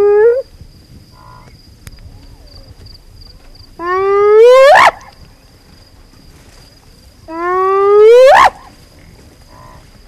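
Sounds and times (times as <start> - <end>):
spotted hyena whooping: 3.8 - 5.1, 7.3 - 8.7.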